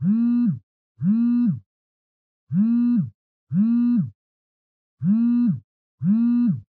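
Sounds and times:
cell phone vibrating on a blanket: 0:00.0 - 0:01.7, 0:02.5 - 0:04.2, 0:05.0 - 0:06.7.

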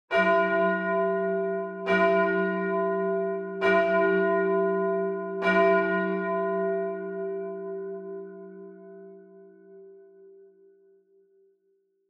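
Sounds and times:
high long church bell ringing: 0:00.1 - 0:10.6.

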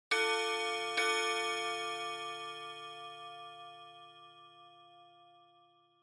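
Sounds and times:
pendulum clock chime: 0:00.1 - 0:06.0.

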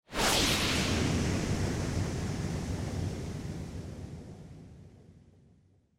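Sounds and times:
low long motion speed lines whoosh: 0:00.1 - 0:03.4.

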